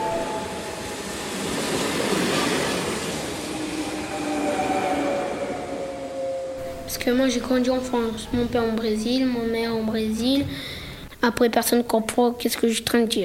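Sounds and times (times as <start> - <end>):
faint metallic squeals: 0.0 - 7.6
train rumbling on rails: 0.0 - 9.1
speech: 7.0 - 13.2.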